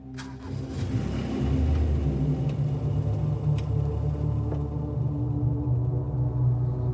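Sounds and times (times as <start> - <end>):
car engine starting, revving and pulling away: 0.1 - 6.9.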